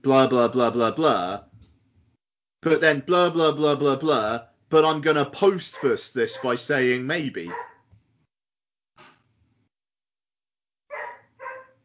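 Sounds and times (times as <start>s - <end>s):
speech: 0.0s - 1.5s, 2.6s - 7.7s
pet dog barking: 5.7s - 6.6s, 7.5s - 7.9s, 10.9s - 11.8s.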